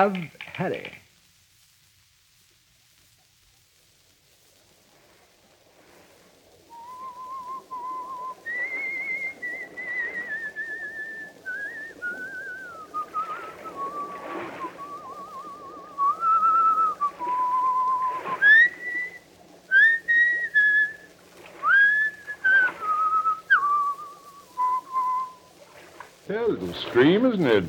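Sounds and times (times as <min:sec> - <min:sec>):
speech: 0:00.0 - 0:01.0, 0:26.8 - 0:27.6
low steady hum: 0:05.0 - 0:27.6
person whistling a slow lilting folk melody: 0:06.7 - 0:25.5.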